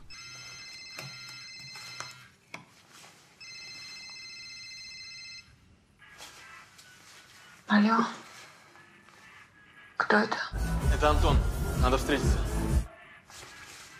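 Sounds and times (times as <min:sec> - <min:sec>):
telephone ringing on a bedside table: 0:00.0 - 0:02.4, 0:03.4 - 0:05.8
speech: 0:07.7 - 0:08.2, 0:10.1 - 0:12.5.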